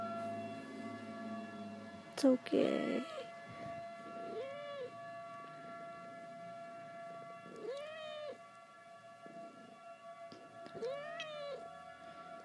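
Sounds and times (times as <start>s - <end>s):
droning tonal hum: 0.0s - 12.4s
speech: 2.2s - 3.2s
distressed cat meowing: 7.5s - 8.4s, 10.8s - 11.6s.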